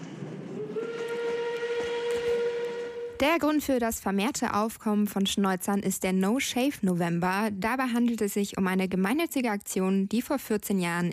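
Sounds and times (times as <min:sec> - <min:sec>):
steam train whistle as a train arrives: 0:00.6 - 0:03.3
speech: 0:03.2 - 0:11.1.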